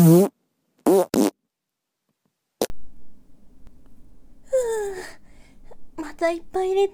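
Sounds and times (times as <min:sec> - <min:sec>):
speech: 0:00.0 - 0:00.4, 0:06.2 - 0:06.9
loud farts: 0:00.0 - 0:01.3.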